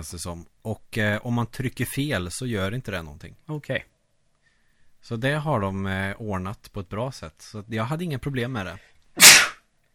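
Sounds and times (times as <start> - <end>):
speech: 0.0 - 3.9, 5.0 - 9.3
sneeze: 9.2 - 9.6.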